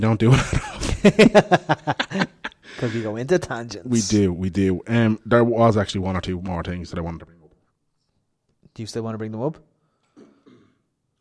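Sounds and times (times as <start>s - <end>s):
speech: 0.0s - 7.4s, 8.8s - 9.7s
laughter: 0.3s - 3.1s
cough: 10.1s - 10.9s.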